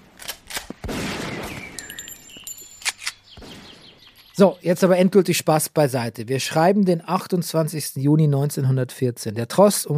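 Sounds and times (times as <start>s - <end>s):
gunfire on a military training ground: 0.3s - 1.9s, 2.9s - 4.1s
speech: 4.4s - 9.9s.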